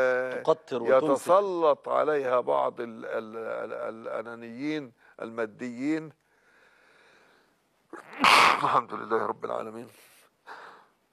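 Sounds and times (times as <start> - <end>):
speech: 0.0 - 6.2, 7.9 - 10.1
person sneezing: 8.0 - 8.8.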